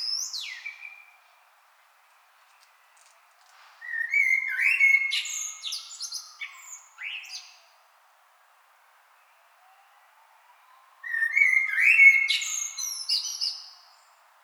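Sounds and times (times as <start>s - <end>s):
common blackbird mellow whistled phrase with high twittery flourishes: 0.0s - 1.3s, 3.8s - 7.6s, 11.0s - 14.1s.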